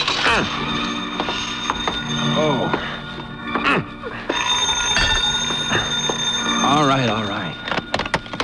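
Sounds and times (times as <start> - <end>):
telephone bell ringing: 0.0 - 8.4
speech: 0.4 - 0.7.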